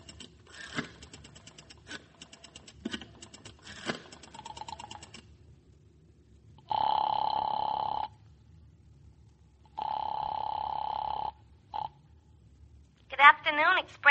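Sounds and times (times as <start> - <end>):
low hum: 0.0 - 14.0
telephone ringing: 3.7 - 5.1, 6.6 - 8.2, 9.7 - 12.0.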